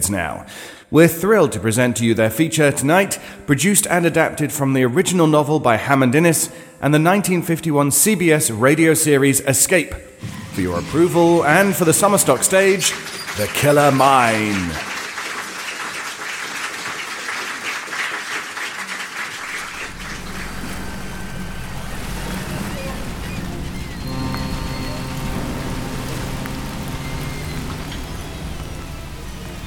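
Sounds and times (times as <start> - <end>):
speech: 0.0 - 14.9
steady rain: 19.5 - 29.6
deep low rumble: 19.6 - 29.6
faint tonal hum: 19.6 - 29.6.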